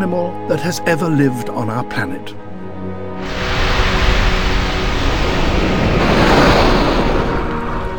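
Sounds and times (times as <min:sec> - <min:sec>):
speech: 0:00.0 - 0:03.4
wind over open ocean: 0:02.5 - 0:07.9
open ocean waves: 0:03.2 - 0:07.9.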